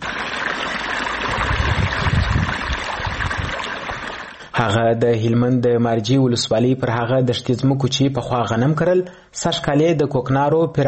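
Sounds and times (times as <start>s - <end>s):
irrigation water rushing into newly planted poppy fields: 0.0s - 4.6s
speech: 4.6s - 10.8s.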